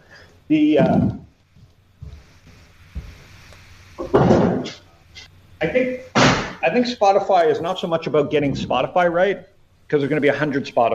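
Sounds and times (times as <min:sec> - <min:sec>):
speech: 0:00.5 - 0:01.2, 0:05.6 - 0:10.9
door swinging shut with a thud and rattle: 0:06.2 - 0:06.6.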